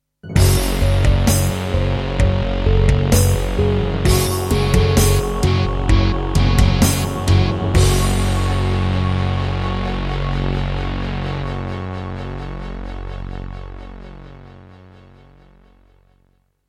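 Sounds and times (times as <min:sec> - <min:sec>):
Yamaha MU2000EX tone generator playing in XG mode: 0:00.3 - 0:11.4.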